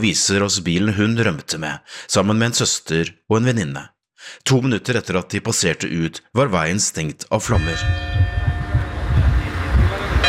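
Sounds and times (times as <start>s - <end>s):
speech: 0.0s - 8.4s
village church bells ringing to warn of a wildfire in Andalusia: 7.4s - 10.2s
loud continuous low rumbling noise: 7.5s - 10.2s.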